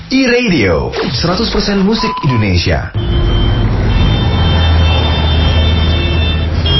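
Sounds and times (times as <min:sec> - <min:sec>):
speech: 0:00.3 - 0:03.2
idling cars and buses in a weekend traffic jam in Jakarta: 0:03.0 - 0:06.7.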